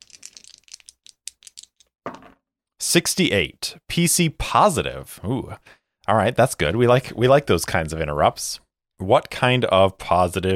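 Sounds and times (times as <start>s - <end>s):
percentile dice rattling across a hard surface: 0.0s - 2.3s
speech: 2.9s - 10.5s.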